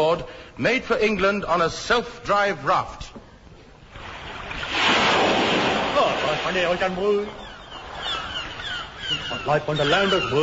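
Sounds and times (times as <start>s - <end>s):
speech: 0.1s - 3.2s, 6.4s - 7.4s, 9.1s - 10.4s
ocean waves: 4.0s - 9.1s.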